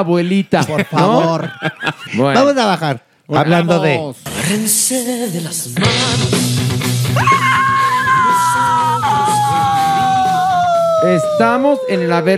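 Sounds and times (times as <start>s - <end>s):
speech: 0.0s - 7.6s, 11.0s - 12.3s
laughter: 0.2s - 2.6s
woman screaming loudly: 7.2s - 12.1s.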